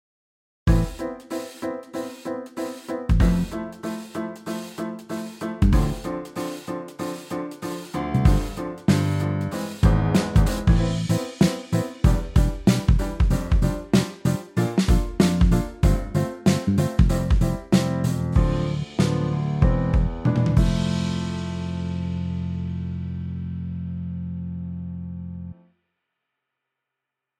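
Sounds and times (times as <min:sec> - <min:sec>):
drum and bass music: 0:00.7 - 0:22.1.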